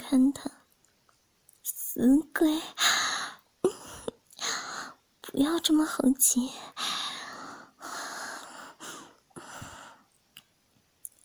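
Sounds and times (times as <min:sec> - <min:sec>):
speech: 0:00.1 - 0:00.6, 0:02.0 - 0:03.0, 0:05.3 - 0:06.9
woman panting rapidly and heavily: 0:02.8 - 0:05.0, 0:06.7 - 0:10.0.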